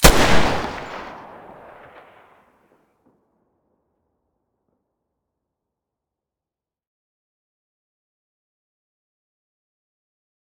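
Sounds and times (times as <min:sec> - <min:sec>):
Desert Eagle pistol muzzle blast: 0:00.0 - 0:02.2.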